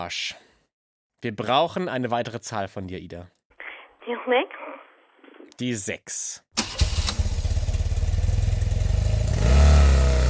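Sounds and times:
speech: 0.0s - 0.4s, 1.2s - 3.4s, 4.0s - 4.6s, 5.6s - 6.4s
motorcycle engine starting, idling and revving: 6.6s - 10.2s.

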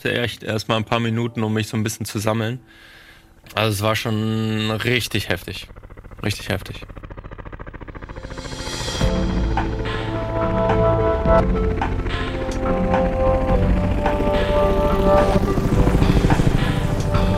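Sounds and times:
speech: 0.0s - 7.0s, 11.3s - 13.0s
helicopter engine roar: 3.9s - 17.3s.

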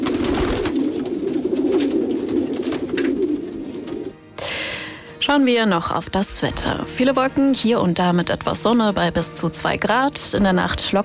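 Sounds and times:
racing pigeons cooing: 0.0s - 4.2s
speech: 5.3s - 11.0s.

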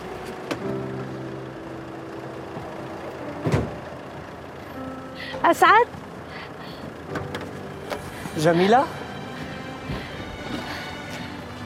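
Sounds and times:
car engine idling: 0.0s - 11.6s
car door opening clunk: 0.2s - 0.8s, 3.3s - 4.3s, 7.1s - 8.1s
speech: 5.4s - 6.0s, 8.4s - 9.0s.

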